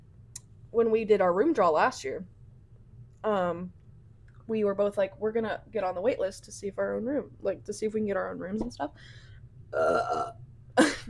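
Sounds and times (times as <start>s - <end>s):
speech: 0.7s - 2.4s, 3.2s - 3.8s, 4.5s - 10.5s
loud drawn-out burp: 9.8s - 10.4s.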